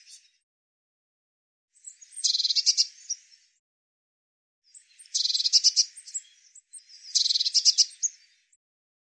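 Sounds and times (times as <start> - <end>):
Eurasian blue tit churring: 5.1 - 5.8, 7.2 - 8.1.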